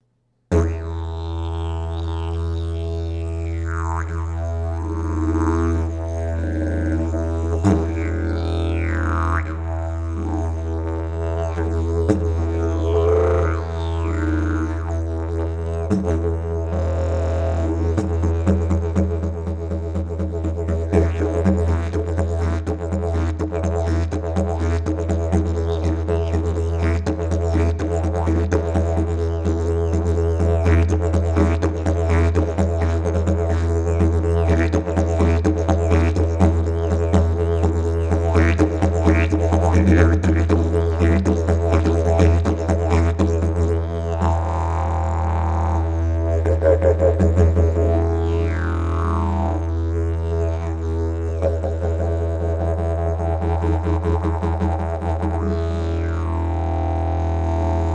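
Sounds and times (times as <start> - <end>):
didgeridoo: 0.5 - 57.9.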